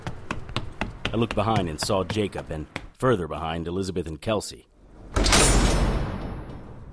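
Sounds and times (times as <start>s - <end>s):
speech: 1.1s - 4.7s
pair of swinging double doors bursting open with a bang and rattling swing: 4.9s - 6.9s.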